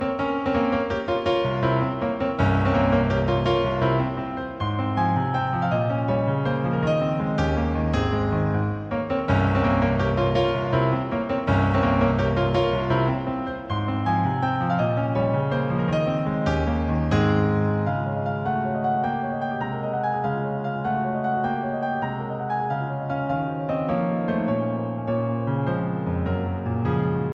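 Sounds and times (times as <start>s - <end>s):
beautiful piano ringtone on a phone: 0.0s - 26.2s.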